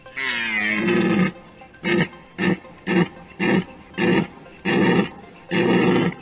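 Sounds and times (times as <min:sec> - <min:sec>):
lead reindeer grunting: 0:00.0 - 0:06.1.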